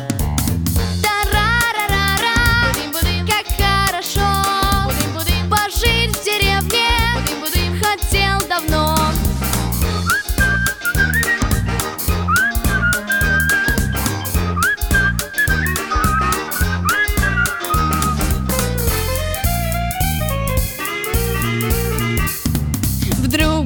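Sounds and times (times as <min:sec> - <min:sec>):
busy loud musical backing with a steady beat: 0:00.0 - 0:23.6
person whistling a melody: 0:09.8 - 0:22.5.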